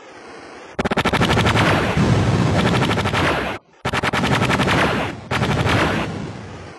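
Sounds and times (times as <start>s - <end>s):
Schmeisser machine gun firing: 0.8s - 6.6s.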